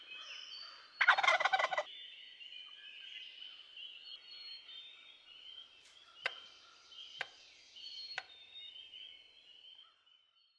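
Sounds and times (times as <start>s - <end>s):
wild turkey gobbling: 1.0s - 1.9s.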